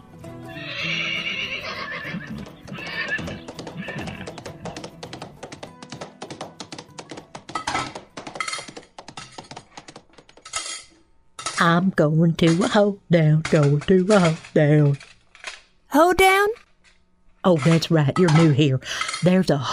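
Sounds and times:
horse hooves clopping: 0:00.2 - 0:10.6
horse neighing: 0:00.5 - 0:04.4
speech: 0:11.6 - 0:15.1, 0:15.9 - 0:16.6, 0:17.4 - 0:19.7.

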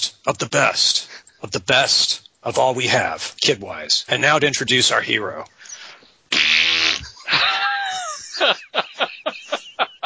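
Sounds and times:
speech: 0:00.2 - 0:05.6
loud buzzy fart: 0:06.3 - 0:07.3
laughter: 0:07.0 - 0:10.0.

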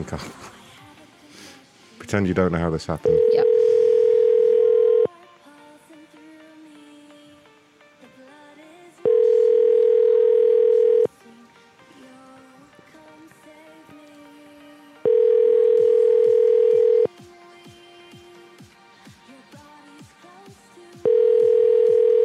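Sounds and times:
speech: 0:00.0 - 0:00.6, 0:02.1 - 0:03.5
outgoing telephone call ring tones: 0:03.0 - 0:05.1, 0:09.0 - 0:11.1, 0:15.0 - 0:17.1, 0:21.0 - 0:22.2.

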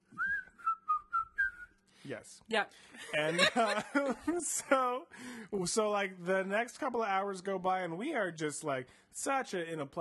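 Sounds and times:
person whistling a short bouncy tune: 0:00.1 - 0:01.8
speech: 0:02.1 - 0:09.9
laughter: 0:03.0 - 0:05.0.

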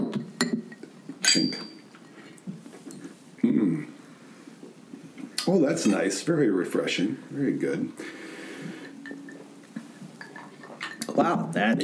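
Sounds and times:
glasses clinking together in a toast: 0:00.0 - 0:03.2, 0:05.4 - 0:06.2, 0:08.0 - 0:11.8
low voices murmuring: 0:00.6 - 0:11.8
speech: 0:01.3 - 0:01.7, 0:05.5 - 0:08.2, 0:11.2 - 0:11.8.

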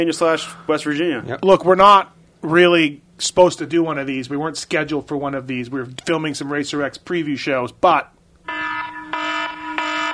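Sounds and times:
speech: 0:00.0 - 0:08.1
loud continuous electronic alarm buzzer: 0:08.4 - 0:10.1.

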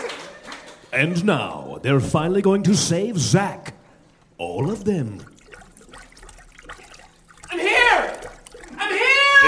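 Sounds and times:
speech: 0:01.0 - 0:03.8, 0:04.4 - 0:05.3
water splashing and churning: 0:04.4 - 0:09.4.

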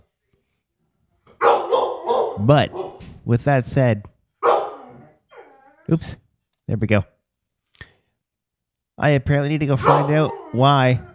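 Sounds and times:
dog barking: 0:01.4 - 0:03.1, 0:04.4 - 0:05.5, 0:09.8 - 0:11.1
speech: 0:02.4 - 0:04.1, 0:05.9 - 0:07.1, 0:09.0 - 0:11.1.

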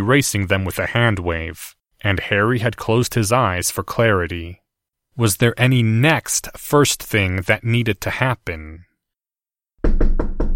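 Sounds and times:
speech: 0:00.0 - 0:04.6, 0:05.2 - 0:08.9
knocking on a heavy oaken door to a headmistress's office: 0:09.8 - 0:10.5.

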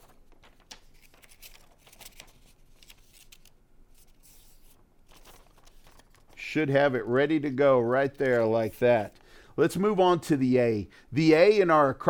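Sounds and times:
paper rustling and creasing as a sheet is folded into a paper airplane: 0:00.0 - 0:09.3
speech: 0:06.5 - 0:12.0.

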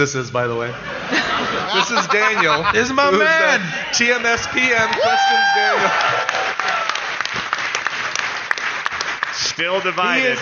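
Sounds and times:
speech: 0:00.0 - 0:06.5, 0:09.6 - 0:10.4
laughter: 0:00.9 - 0:06.5
audience applause: 0:04.0 - 0:10.4.

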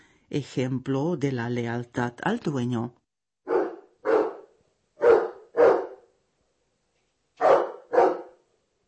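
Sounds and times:
speech: 0:00.3 - 0:03.0
dog double barking: 0:03.5 - 0:06.1, 0:07.4 - 0:08.4.

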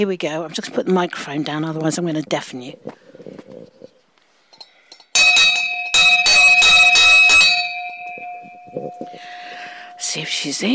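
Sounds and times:
speech: 0:00.0 - 0:03.0, 0:10.1 - 0:10.7
big clangy front door bell rung outdoors: 0:05.2 - 0:10.5.

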